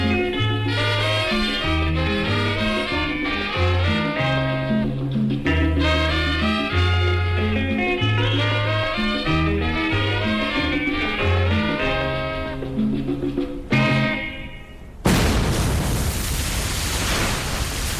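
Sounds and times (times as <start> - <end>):
music: 0.0 - 15.0
explosion with a fireball rising into the sky during a military offensive: 15.0 - 17.9.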